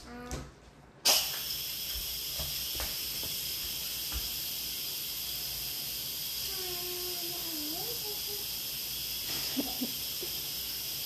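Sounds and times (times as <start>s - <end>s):
steam hissing from rice cooking: 1.1s - 11.0s.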